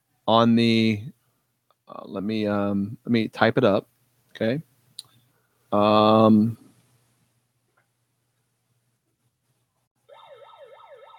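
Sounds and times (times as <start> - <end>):
speech: 0.3 - 1.2, 1.9 - 4.7, 5.7 - 6.6
megaphone siren: 10.1 - 11.1.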